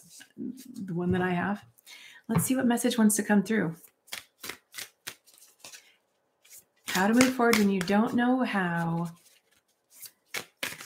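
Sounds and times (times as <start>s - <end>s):
speech: 0.6s - 3.9s, 7.0s - 9.2s
deck of self-love affirmation cards being shuffled: 3.8s - 10.8s.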